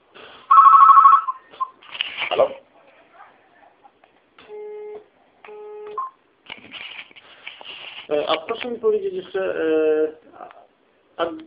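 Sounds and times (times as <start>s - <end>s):
telephone ringing with electronic trill: 0.5s - 1.5s
speech: 8.2s - 10.4s, 11.2s - 11.4s.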